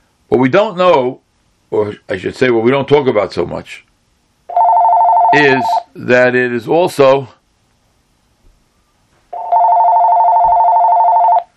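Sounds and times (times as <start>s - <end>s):
speech: 0.3s - 3.9s, 5.3s - 7.4s
telephone ringing during a lecture: 4.5s - 5.8s, 9.3s - 11.5s.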